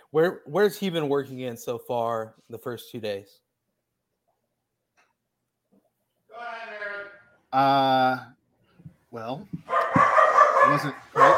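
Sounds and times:
speech: 0.1 - 3.4, 7.5 - 8.4, 9.1 - 11.3
dogs barking: 9.6 - 11.3.

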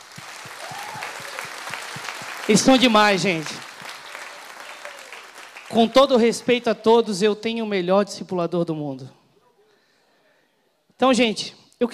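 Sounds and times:
audience applause: 0.0 - 6.8
speech: 2.5 - 3.6, 5.8 - 9.2, 11.0 - 11.9.

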